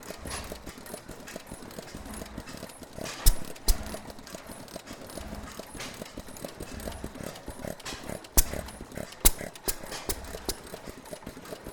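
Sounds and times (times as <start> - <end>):
4 hp Fairbanks Morse Model T vertical engine circa 1910 running at Coolspring power museum: 0.0 - 11.7.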